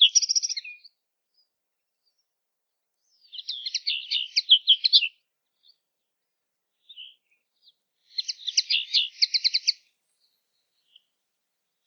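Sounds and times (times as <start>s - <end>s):
common linnet twittering song with rattled trills: 0.0s - 0.9s, 3.1s - 5.8s, 6.8s - 11.1s.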